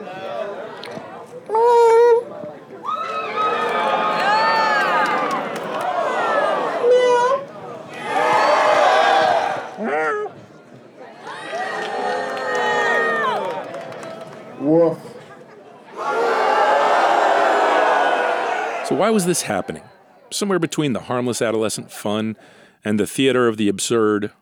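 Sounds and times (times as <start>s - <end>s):
large crowd cheering: 0.0s - 21.7s
large crowd booing: 2.1s - 10.4s, 11.1s - 14.6s, 15.8s - 20.1s
speech: 19.0s - 24.4s.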